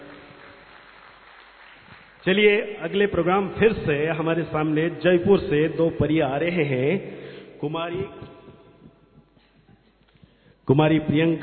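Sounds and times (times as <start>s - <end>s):
audience applause: 0.0s - 2.6s
speech: 2.2s - 8.4s, 10.7s - 11.4s.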